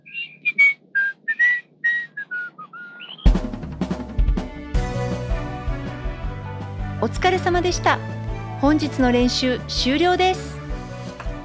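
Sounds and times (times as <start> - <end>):
person whistling a cheerful tune: 0.2 - 3.1
instrumental music track: 3.2 - 11.4
speech: 7.0 - 10.5.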